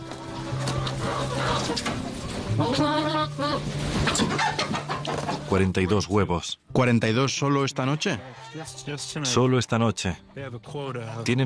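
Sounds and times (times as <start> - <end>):
hen clucking and cackling: 0.0 - 6.2, 7.5 - 9.4
speech: 1.7 - 4.9, 5.5 - 11.4.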